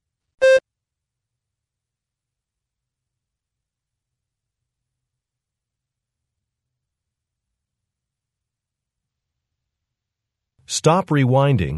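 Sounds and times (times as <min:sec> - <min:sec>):
short electronic signal tone beep of an exam recording: 0:00.4 - 0:00.6
speech: 0:10.7 - 0:11.7.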